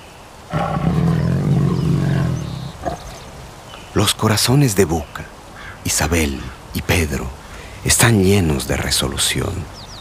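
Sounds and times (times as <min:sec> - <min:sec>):
tiger roaring with a deep rumbling roar and grunt: 0:00.5 - 0:03.5
speech: 0:04.0 - 0:09.8.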